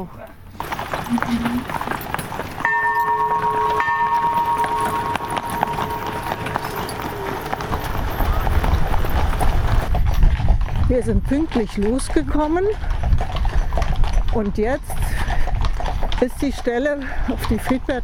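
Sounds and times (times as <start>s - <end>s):
speech: 0.0s - 0.2s, 1.1s - 2.0s, 10.9s - 13.0s, 14.4s - 15.0s, 16.2s - 18.0s
horse hooves clip-clopping: 0.0s - 18.0s
sustained tonal whine: 2.7s - 8.1s.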